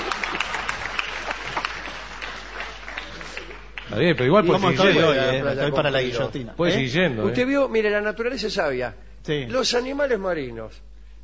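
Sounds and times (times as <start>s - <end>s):
crowd applauding: 0.0s - 5.2s
speech: 3.9s - 10.9s.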